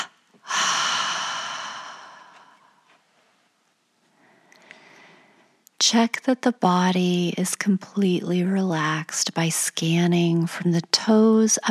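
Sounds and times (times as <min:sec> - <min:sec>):
faint breath in a meditation breathing exercise: 0:00.4 - 0:03.0, 0:04.1 - 0:05.6
speech: 0:05.9 - 0:11.6.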